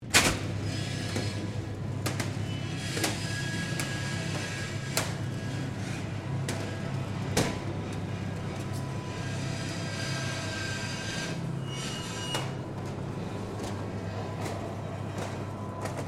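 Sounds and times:
small internal roller door of a small supermarket opening: 0.1 - 16.0.

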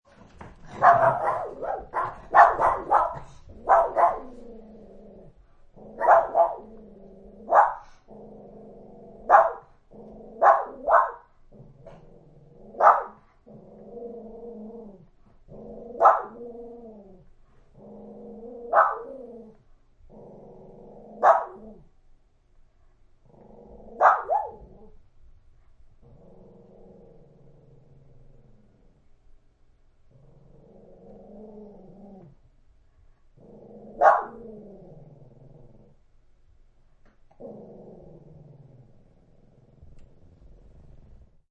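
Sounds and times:
small dogs barking through door: 0.3 - 4.6, 5.8 - 6.8, 7.4 - 8.1, 9.2 - 12.0, 12.7 - 13.4, 15.8 - 16.5, 18.6 - 19.6, 21.1 - 21.8, 23.9 - 25.0, 33.8 - 34.6.

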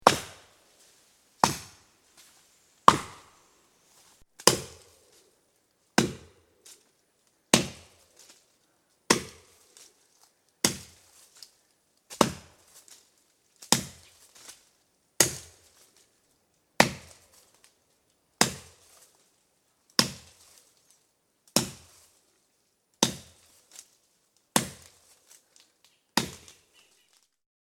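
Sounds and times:
axe chopping a tree: 0.0 - 0.5, 1.4 - 1.8, 2.9 - 3.4, 4.4 - 5.1, 6.0 - 6.4, 7.5 - 8.0, 9.1 - 9.6, 10.6 - 11.0, 12.1 - 12.7, 13.6 - 14.1, 15.2 - 15.8, 16.8 - 17.3, 18.4 - 18.8, 20.0 - 20.4, 21.6 - 22.0, 23.0 - 23.4, 24.6 - 25.2, 26.2 - 26.6.

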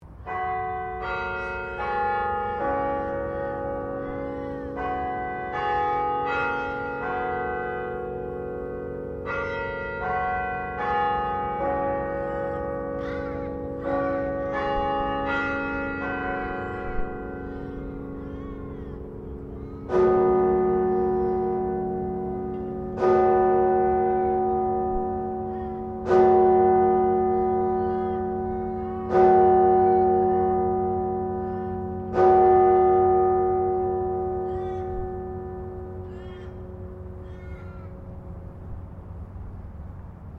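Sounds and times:
carillon bells chiming in Canberra: 0.3 - 38.1.

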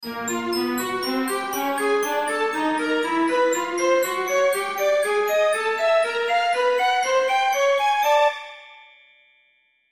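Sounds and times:
strings and glockenspiel ascending: 0.0 - 8.9.

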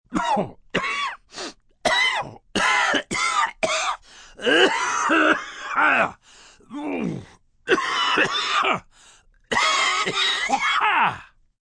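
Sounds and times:
sick man hacking cough with wheezing from a cold: 0.1 - 1.2, 1.9 - 5.8, 7.7 - 8.9, 9.5 - 10.8.

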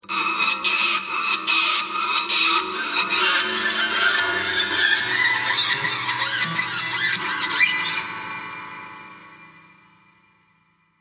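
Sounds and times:
torturous grating along piano wire: 0.1 - 8.1.

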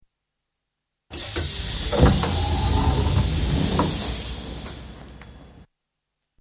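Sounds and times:
London Underground District Line train sliding door opening: 1.1 - 5.7.

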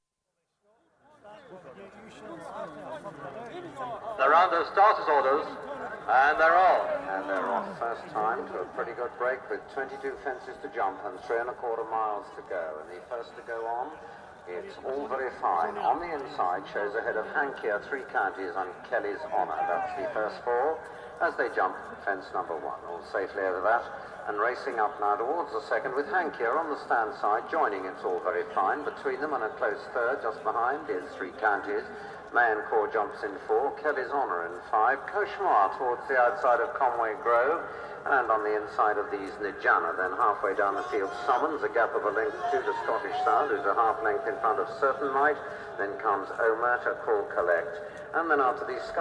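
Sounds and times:
excited racecourse crowd noise: 0.4 - 48.9
horse race commentary over PA at National Hunt racing: 0.7 - 48.9.

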